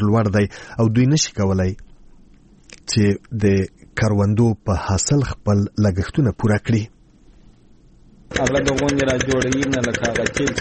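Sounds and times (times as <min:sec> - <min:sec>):
speech: 0:00.0 - 0:01.9, 0:02.9 - 0:07.0, 0:08.3 - 0:10.6
diesel generator engine pumping irrigation water from deep wells: 0:08.3 - 0:10.6.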